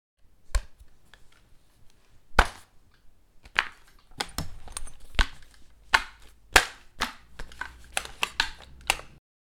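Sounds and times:
sniper rifle handling foley movement: 3.6s - 9.2s.

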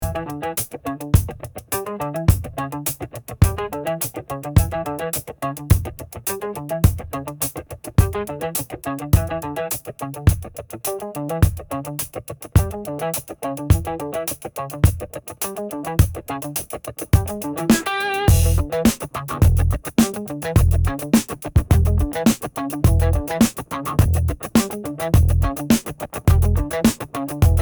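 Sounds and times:
festive funky groove music: 0.0s - 27.5s.

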